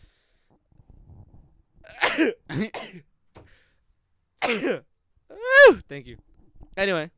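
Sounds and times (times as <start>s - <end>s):
loud sneezes: 1.9s - 3.0s, 4.4s - 4.8s
speech: 2.2s - 3.1s, 4.5s - 4.9s, 5.5s - 7.1s.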